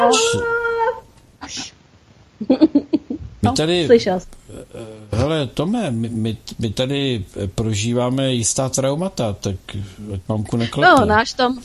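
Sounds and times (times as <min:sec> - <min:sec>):
speech: 0:00.0 - 0:00.6, 0:01.5 - 0:01.7, 0:02.4 - 0:11.6
dog whimpering after jumping on a person: 0:00.0 - 0:01.1.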